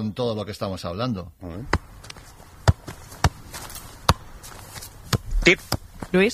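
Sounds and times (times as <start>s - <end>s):
speech: 0.0s - 2.2s, 5.5s - 6.3s
football being kept up with repeated touches: 1.6s - 6.3s.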